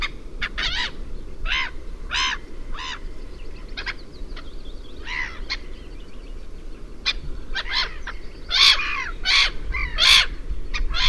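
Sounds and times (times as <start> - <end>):
black-headed gull screeches: 0.0 - 3.0, 7.1 - 11.0
black-headed gull harsh grating calls: 0.0 - 3.1, 3.7 - 5.7, 7.0 - 11.0.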